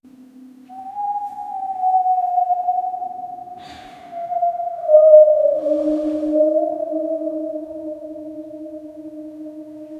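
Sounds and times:
wind whistling through: 0.7s - 9.9s.

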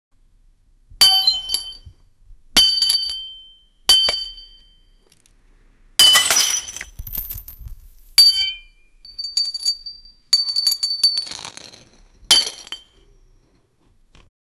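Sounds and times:
glass breaking and shattering: 1.0s - 1.9s, 2.6s - 4.6s, 6.0s - 13.0s.

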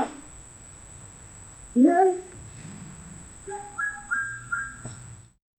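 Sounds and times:
elephant: 2.0s - 5.2s
farts in an African village: 2.4s - 3.3s.

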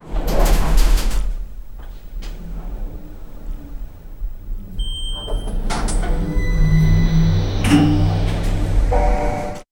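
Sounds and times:
elevator arriving at a floor: 0.0s - 9.7s
elevator arrival beep: 2.6s - 9.7s.

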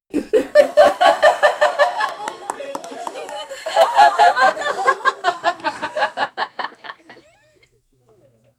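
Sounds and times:
1990s sitcom laugh track: 0.1s - 7.6s.

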